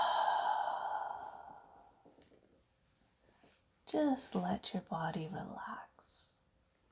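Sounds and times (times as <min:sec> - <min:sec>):
deep exhale after a belly breath: 0:00.0 - 0:02.0
speech: 0:03.9 - 0:06.2.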